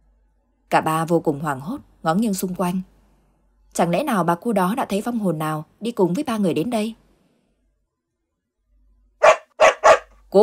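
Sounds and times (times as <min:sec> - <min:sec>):
speech: 0:00.7 - 0:02.9, 0:03.7 - 0:07.0
black dog barking while running out of a house: 0:09.2 - 0:10.2.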